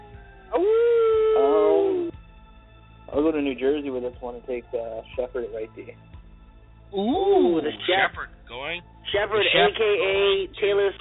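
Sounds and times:
wolf howling: 0.4s - 2.2s
speech: 3.3s - 6.2s, 6.9s - 10.9s.

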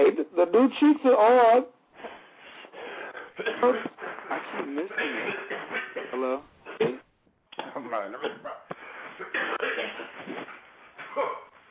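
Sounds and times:
speech: 0.4s - 1.8s, 3.4s - 7.0s, 7.6s - 10.6s, 11.2s - 11.4s
person coughing: 3.1s - 7.0s, 7.6s - 11.6s.

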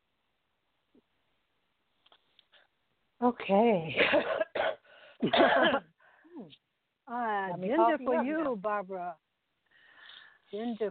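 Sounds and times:
speech: 3.2s - 4.4s, 5.2s - 9.3s, 10.5s - 10.8s
person coughing: 4.0s - 5.9s.

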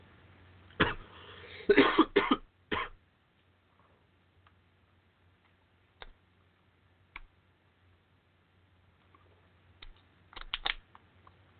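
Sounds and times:
person coughing harshly after choking on weed while smoking a blunt: 0.8s - 3.0s.

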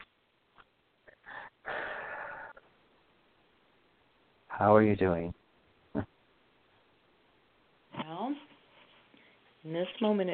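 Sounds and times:
breath in through nose: 1.2s - 2.6s
speech: 4.6s - 5.4s, 9.7s - 10.3s.

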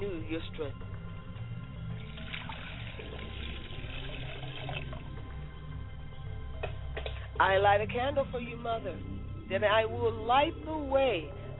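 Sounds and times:
speech: 0.0s - 1.0s, 7.4s - 11.5s
water pouring into a glass: 1.9s - 5.7s.

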